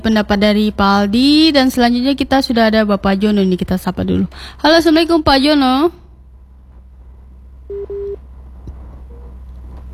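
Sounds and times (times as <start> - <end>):
speech: 0.0 - 6.0
low phone line hum: 0.0 - 9.9
busy tone from a dropped phone call: 7.7 - 8.2.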